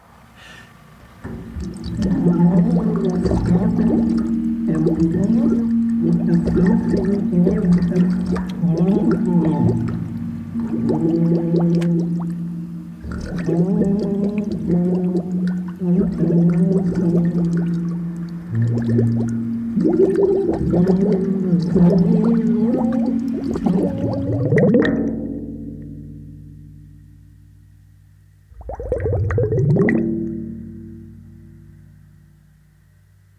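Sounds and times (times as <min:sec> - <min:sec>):
low hollow rumble: 0:00.8 - 0:33.3
bubbling voice singing and speaking underwater in an experiment: 0:01.7 - 0:25.2.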